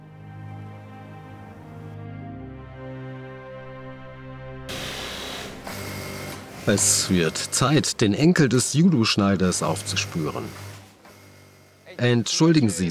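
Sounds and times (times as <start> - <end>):
sewing machine running: 4.7 - 8.7, 9.3 - 12.4
speech: 6.6 - 10.7, 12.0 - 12.8.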